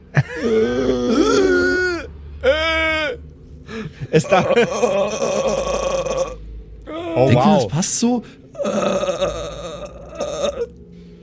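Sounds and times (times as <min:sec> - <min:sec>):
voice imitating a zombie groan: 0:00.2 - 0:03.2, 0:04.2 - 0:07.7, 0:08.5 - 0:10.7
speech: 0:00.4 - 0:00.8, 0:04.1 - 0:05.6, 0:07.2 - 0:09.4.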